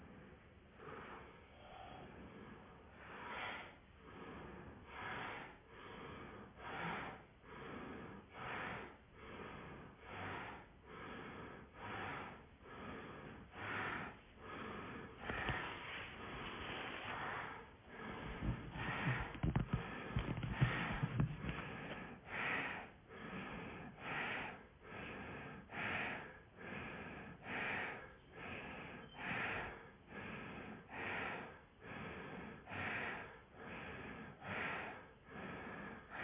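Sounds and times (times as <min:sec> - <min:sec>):
Bhastrika bellows breathing with forceful nasal inhales and exhales: 0:00.0 - 0:36.2.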